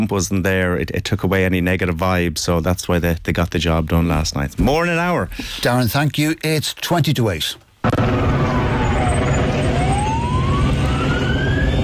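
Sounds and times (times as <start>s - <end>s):
speech: 0.0s - 8.5s
constant low roar: 7.8s - 11.8s
emergency sirens wailing during a street disturbance: 7.8s - 11.8s.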